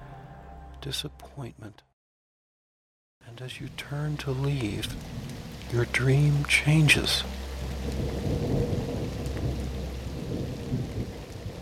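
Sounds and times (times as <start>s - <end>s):
speech: 0.8s - 1.9s, 3.3s - 8.2s
rain pouring: 3.3s - 11.6s
deep rolling thunder rumbling: 3.7s - 11.6s.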